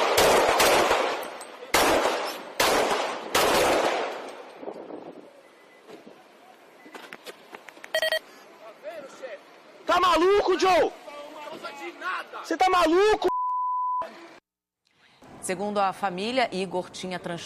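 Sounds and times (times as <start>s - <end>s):
pistol gunshots on body camera recording: 0.0s - 4.4s
speech: 10.1s - 11.0s, 12.1s - 13.3s, 15.5s - 17.4s.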